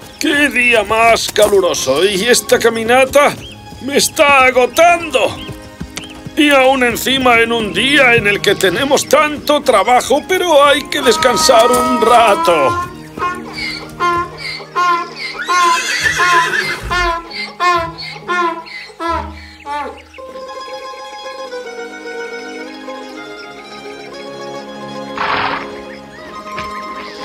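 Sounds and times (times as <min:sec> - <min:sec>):
speech: 0:00.2 - 0:05.4, 0:06.4 - 0:13.3
horse whinnying: 0:10.8 - 0:20.0.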